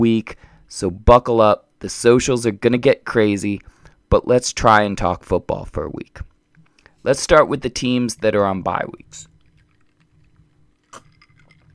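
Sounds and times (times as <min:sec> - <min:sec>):
speech: 0:00.0 - 0:06.3, 0:07.0 - 0:09.3
low hum: 0:00.0 - 0:11.7
sip of rum from a glass: 0:10.9 - 0:11.7.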